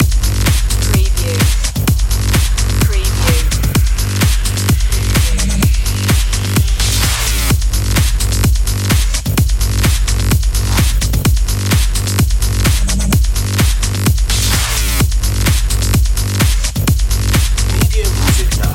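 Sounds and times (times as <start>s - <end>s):
high drive loop: 0.0s - 18.7s.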